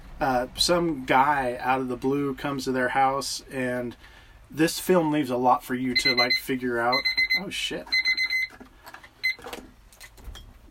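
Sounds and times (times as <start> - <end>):
speech: 0.2 - 8.0
electronic alarm with rapid high-pitched beeping: 6.0 - 8.6, 9.2 - 9.4.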